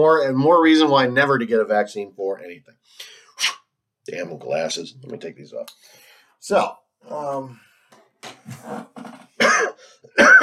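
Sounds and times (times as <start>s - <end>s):
speech: 0.0s - 9.2s
person coughing harshly: 9.4s - 10.4s.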